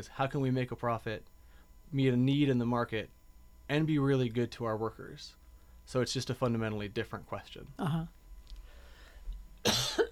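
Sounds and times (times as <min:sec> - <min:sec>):
speech: 0:00.0 - 0:08.2
person coughing: 0:09.6 - 0:10.1.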